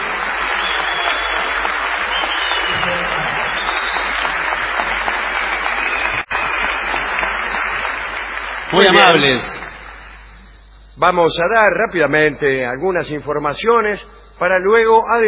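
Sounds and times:
large theater audience applauding: 0:00.0 - 0:10.8
speech: 0:08.8 - 0:09.7, 0:11.0 - 0:15.2.

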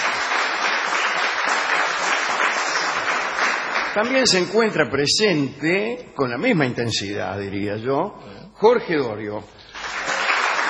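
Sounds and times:
crowd applauding: 0:00.0 - 0:04.4, 0:09.7 - 0:10.6
speech: 0:04.0 - 0:09.6.

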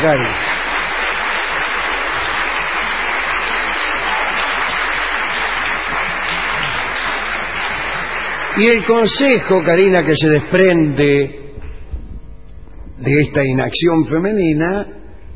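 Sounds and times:
speech: 0:00.0 - 0:00.5, 0:08.6 - 0:11.4, 0:13.0 - 0:15.0
audience applause: 0:00.0 - 0:10.8.

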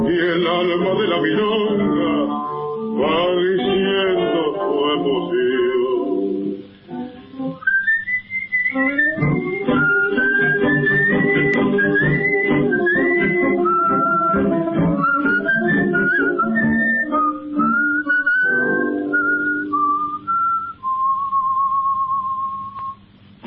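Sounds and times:
speech: 0:00.2 - 0:05.7
man whistling a lilting tango melody: 0:07.3 - 0:23.1
band accompaniment: 0:09.1 - 0:17.2.

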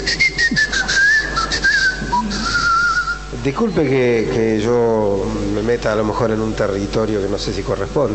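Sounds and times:
person whistling a short wavering tune as a signal: 0:00.0 - 0:03.3
faint hiss: 0:00.0 - 0:08.1
speech: 0:03.4 - 0:08.1.

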